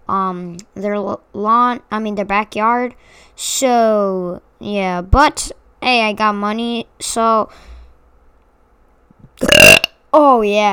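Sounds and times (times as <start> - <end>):
speech: 0.1 - 7.7, 9.4 - 10.7
loud rough throaty burp: 9.4 - 10.0.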